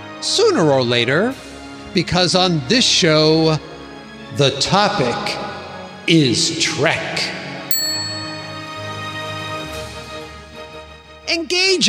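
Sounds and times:
speech: 0.2 - 3.7, 4.3 - 5.5, 6.1 - 7.4, 11.3 - 11.8
bell ding: 7.7 - 9.2.

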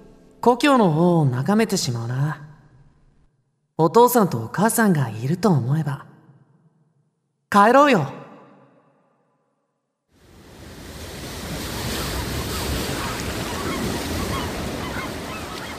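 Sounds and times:
speech: 0.4 - 2.5, 3.8 - 6.1, 7.5 - 8.2
waves breaking against rocks: 10.3 - 15.7.

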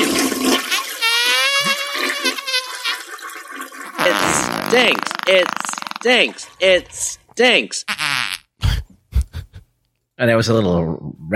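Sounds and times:
toilet flushing with swirling water: 0.0 - 4.7
high whistling toilet refill tone: 0.8 - 6.0
speech: 4.7 - 7.9, 10.2 - 11.3.

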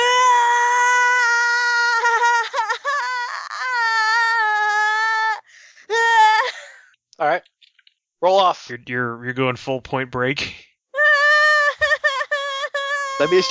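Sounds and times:
player screaming in character, high-pitched and wavering: 0.0 - 6.5, 11.0 - 13.5
speech: 8.4 - 10.6, 13.2 - 13.5.

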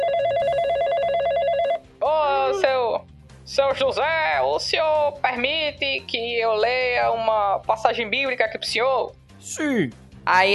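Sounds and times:
telephone ringing with trilling electronic tone: 0.0 - 1.9
speech: 3.5 - 10.5.

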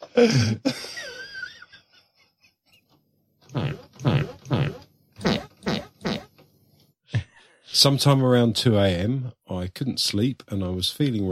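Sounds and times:
speech: 0.2 - 0.8, 7.8 - 11.3
fart sounds sampled into a song: 3.4 - 6.4.

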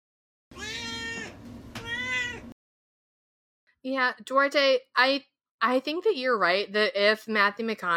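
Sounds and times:
cat meowing: 0.6 - 2.5
speech: 3.8 - 7.9.

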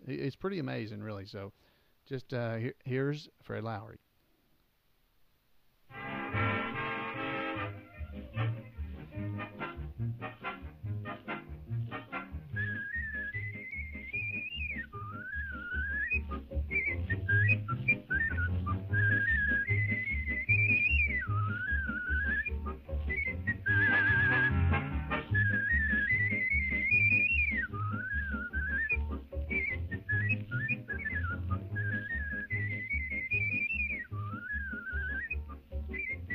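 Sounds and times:
speech: 0.1 - 4.0
steady instrumental accompaniment with pulsing low bass line: 5.9 - 15.1, 16.1 - 36.3
person whistling a lively ornamented melody with trills and slides: 12.4 - 36.3.

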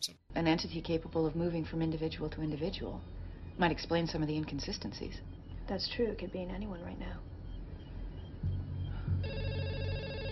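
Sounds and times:
speech: 0.0 - 7.3
low hum: 0.0 - 10.3
telephone ringing with electronic trill: 9.2 - 10.3.

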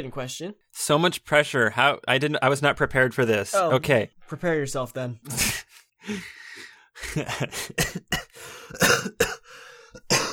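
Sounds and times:
speech: 0.0 - 9.2
throat-clearing: 5.3 - 5.8, 7.2 - 10.3
harsh coughing fit: 5.3 - 5.9, 7.0 - 10.3
raspy breaths: 5.3 - 8.8, 9.4 - 10.1.

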